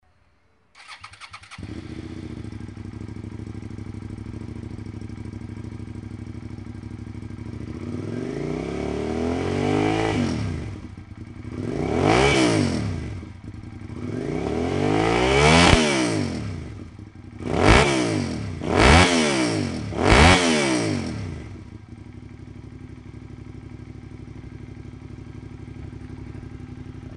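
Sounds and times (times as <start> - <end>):
SV650 motorcycle engine: 0.8 - 27.1.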